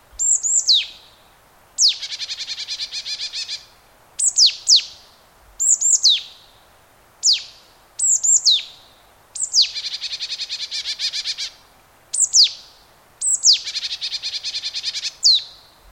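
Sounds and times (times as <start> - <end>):
marsh tit Poecile palustris giving clear high pitchoo calls: 0.2 - 1.0, 1.8 - 3.6, 4.2 - 4.9, 7.2 - 8.7, 9.4 - 11.5, 12.2 - 12.6, 13.2 - 15.5.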